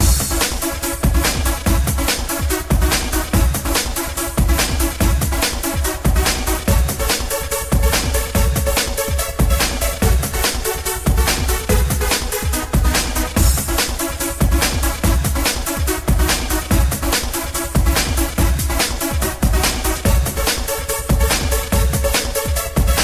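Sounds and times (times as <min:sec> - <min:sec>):
breakbeat ringtone: 0:00.0 - 0:23.0.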